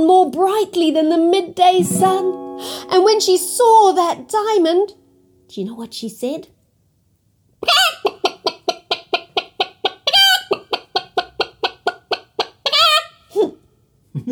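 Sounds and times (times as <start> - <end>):
speech: 0.0 - 6.6, 7.6 - 8.0
chicken clucking: 7.6 - 13.1.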